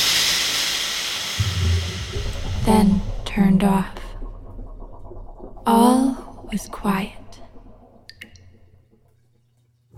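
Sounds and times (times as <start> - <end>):
shower head sputtering and spraying water in a steam-filled bathroom: 0.0 - 3.0
low rumbling surge: 1.3 - 8.8
speech: 2.7 - 4.0, 5.7 - 7.2.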